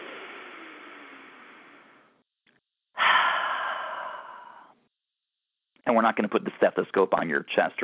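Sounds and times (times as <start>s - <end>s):
airy exhale in a guided breathing exercise: 3.0s - 4.8s
deep inhale in a guided breathing exercise: 3.0s - 4.8s
speech: 5.8s - 7.8s.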